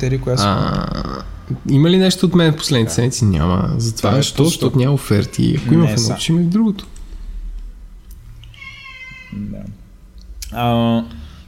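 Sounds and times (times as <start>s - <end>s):
speech: 0.0s - 7.0s, 10.5s - 11.2s
cat meowing in protest: 5.1s - 5.9s, 8.5s - 9.8s.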